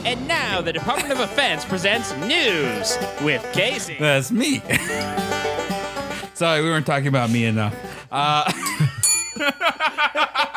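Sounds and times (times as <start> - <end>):
speech: 0.1 - 5.8, 6.4 - 10.5
laughter: 0.8 - 3.0, 4.5 - 6.3, 8.2 - 10.5
bright bell ding: 9.0 - 10.4.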